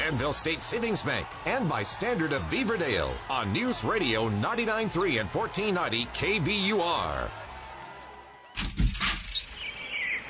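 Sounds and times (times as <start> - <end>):
speech: 0.1 - 7.4
birds chirping under bright snow-melting spring sun: 9.2 - 10.2.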